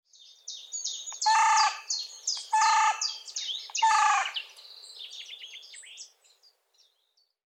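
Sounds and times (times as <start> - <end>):
high chattering squeaky calls: 1.1 - 4.4
carrion crow Corvus corone cawing: 1.2 - 1.9, 2.5 - 3.2, 3.8 - 4.4.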